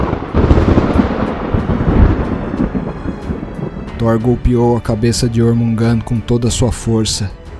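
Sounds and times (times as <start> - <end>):
rumbling thunder effect with a crackling edge: 0.0 - 4.9
speech: 4.0 - 7.4.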